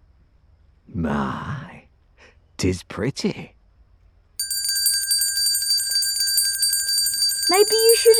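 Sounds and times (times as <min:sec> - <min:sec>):
speech: 0:01.0 - 0:01.6, 0:02.6 - 0:03.6, 0:07.5 - 0:08.1
small silver bell jingling: 0:04.4 - 0:08.1.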